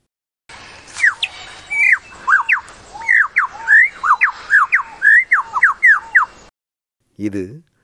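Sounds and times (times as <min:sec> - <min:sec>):
lyrebird calling in loud clear whistled notes: 0:00.6 - 0:06.5
speech: 0:07.2 - 0:07.7.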